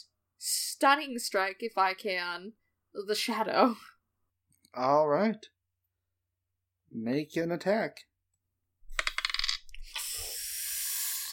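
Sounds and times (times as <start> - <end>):
speech: 0.8 - 4.0, 4.7 - 5.6, 6.9 - 8.1
dice rolled across a hard surface during a Dungeons & Dragons game: 8.9 - 10.0.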